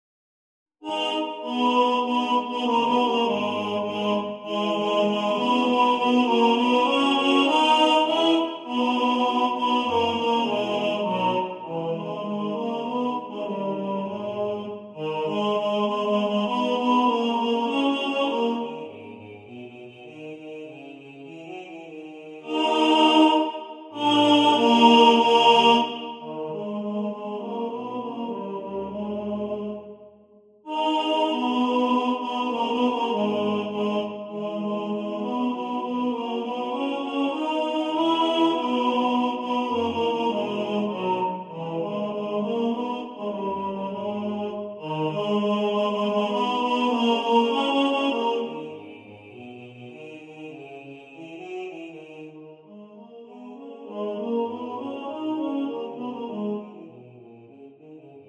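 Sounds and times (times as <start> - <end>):
tenor singing in the foreground: 0.8 - 19.4, 22.4 - 29.9, 30.7 - 49.1
male choir singing: 0.8 - 30.0, 30.7 - 58.2.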